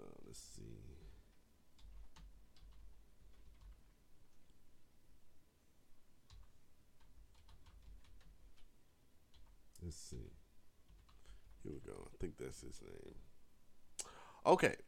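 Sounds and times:
low hum: 0.0s - 14.8s
speech: 0.3s - 0.9s, 9.9s - 10.4s, 11.6s - 13.3s, 14.4s - 14.8s
quiet keyboard typing: 1.7s - 4.6s, 6.2s - 8.7s, 9.3s - 9.9s, 10.8s - 11.6s.

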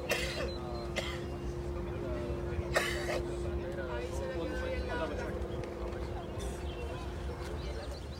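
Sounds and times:
people coughing and clearing throats: 0.0s - 1.4s, 2.6s - 3.5s
busy crowd murmur: 0.0s - 8.1s
people talking: 0.0s - 8.1s
steady low engine hum: 0.0s - 8.1s.

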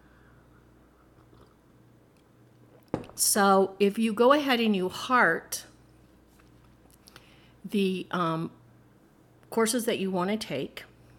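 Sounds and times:
low steady hum: 0.0s - 11.1s
person sipping tea with soft slurping: 1.1s - 1.6s
speech: 3.2s - 5.7s, 7.7s - 8.6s, 9.5s - 10.9s.

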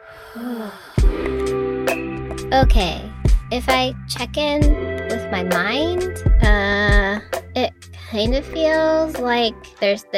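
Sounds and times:
deep breath in and out: 0.0s - 1.4s
speech: 0.4s - 1.4s, 2.5s - 10.1s.

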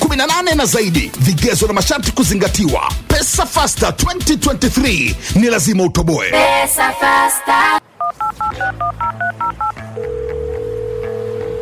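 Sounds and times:
speech: 0.2s - 10.2s
telephone keypad dialing tones placing a call: 8.0s - 11.1s
steady telephone tone: 8.0s - 11.5s.

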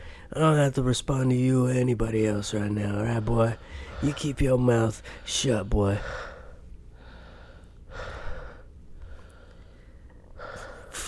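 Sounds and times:
speech: 0.3s - 6.3s
heavy rhythmic rasping breathing: 3.5s - 4.4s, 5.0s - 11.0s.

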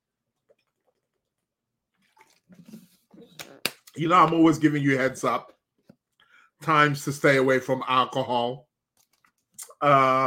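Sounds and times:
splashing water being poured: 0.2s - 3.4s
speech: 4.0s - 5.6s, 6.6s - 8.7s, 9.8s - 10.2s.

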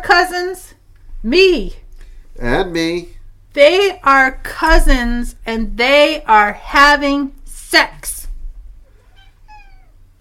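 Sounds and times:
low hum: 0.0s - 10.1s
speech: 0.1s - 1.8s, 2.4s - 8.2s
cat meowing: 8.9s - 10.1s.

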